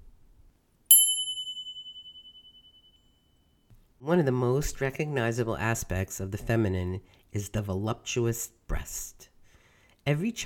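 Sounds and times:
bright bell ding: 0.9 - 3.2
speech: 4.0 - 9.3, 10.0 - 10.4.

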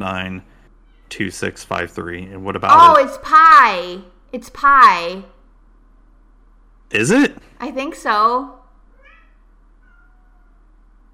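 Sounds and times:
speech: 0.0 - 5.4, 6.9 - 8.6
low steady hum: 0.0 - 11.1
female cat meowing outside a door: 2.7 - 3.3, 8.9 - 10.6.

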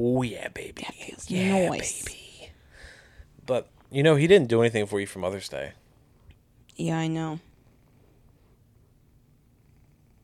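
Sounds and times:
speech: 0.0 - 2.2, 3.5 - 5.8, 6.8 - 7.5
cat purring: 7.4 - 10.2.

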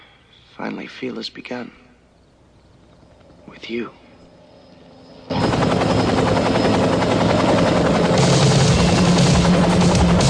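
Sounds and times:
speech: 0.6 - 1.8, 3.5 - 4.0
helicopter rotor and engine: 2.3 - 10.2.

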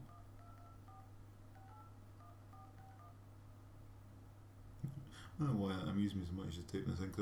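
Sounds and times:
two-tone phone keypad beeps: 0.0 - 3.2
speech: 5.1 - 7.2.

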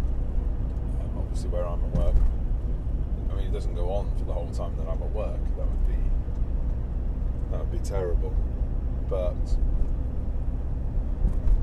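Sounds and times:
car engine or road traffic rumble: 0.0 - 11.6
speech: 1.4 - 2.4, 3.4 - 6.1, 7.5 - 9.8.

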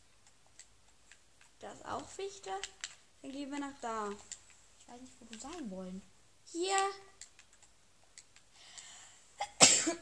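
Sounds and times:
faint scattered clicks: 0.0 - 5.7, 6.7 - 9.1
speech: 1.9 - 7.2
breath catch: 8.5 - 9.2
person sneezing loudly: 9.4 - 10.0.

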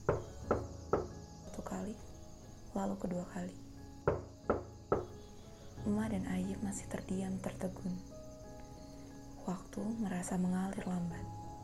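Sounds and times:
knocking on a wooden front door: 0.0 - 1.2, 4.0 - 5.2
speech: 1.8 - 2.1, 2.8 - 4.2, 5.9 - 8.1, 9.5 - 11.4.

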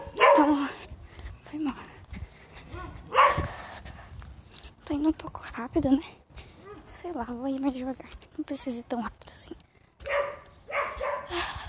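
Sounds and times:
dog barking: 0.0 - 0.6, 2.7 - 3.5, 10.0 - 11.3
outdoor noise: 0.0 - 11.6
speech: 0.4 - 0.8, 5.0 - 6.2, 7.0 - 9.6.

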